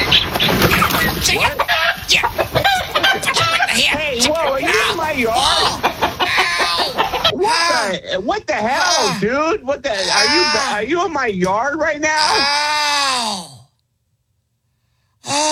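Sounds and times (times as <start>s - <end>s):
chickens clucking: 0.0s - 7.4s
laughter: 0.8s - 9.2s, 10.0s - 10.8s
man talking loudly: 0.9s - 13.5s
speech: 9.7s - 13.2s.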